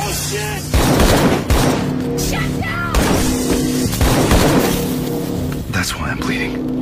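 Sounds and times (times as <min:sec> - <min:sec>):
busy continuous noisy background: 0:00.0 - 0:06.8
gunfire during a violent attack in a hospital: 0:00.7 - 0:02.3, 0:02.9 - 0:05.2.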